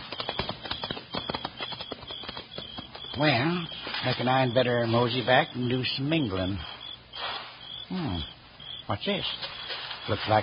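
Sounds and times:
horse hooves clip-clopping on a hard surface: 0:00.0 - 0:05.1
speech: 0:03.2 - 0:06.7, 0:07.9 - 0:08.3, 0:08.9 - 0:09.5, 0:10.1 - 0:10.4.

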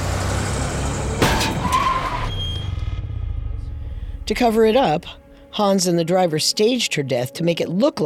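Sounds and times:
tires skidding: 0:00.0 - 0:03.0
car engine roaring: 0:00.0 - 0:04.3
car crash: 0:00.8 - 0:03.8
speech: 0:04.3 - 0:08.0.

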